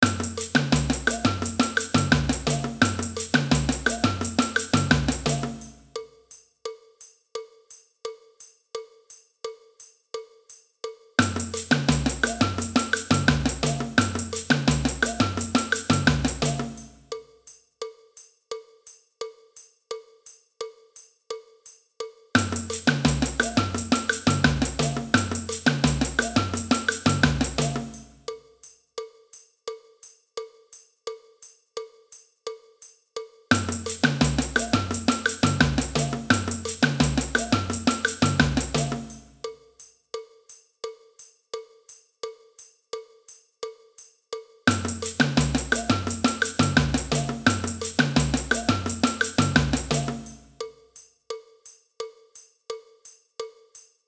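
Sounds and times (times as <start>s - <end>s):
samba band: 0.0s - 6.0s, 11.2s - 17.1s, 22.4s - 28.3s, 33.5s - 39.5s, 44.7s - 50.7s
cowbell: 0.0s - 54.0s.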